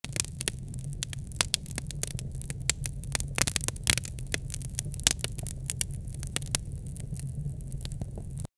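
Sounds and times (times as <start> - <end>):
bubbling while cooking: 0.0 - 8.5
crackling fire: 0.0 - 8.5.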